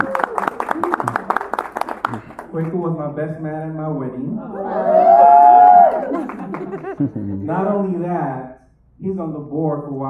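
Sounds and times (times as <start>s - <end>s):
people cheering in a crowd: 0.0s - 2.3s, 4.5s - 7.1s
audience applauding: 0.0s - 2.8s, 5.0s - 7.2s
speech: 2.6s - 5.0s, 7.0s - 10.0s
laughter: 5.9s - 7.7s.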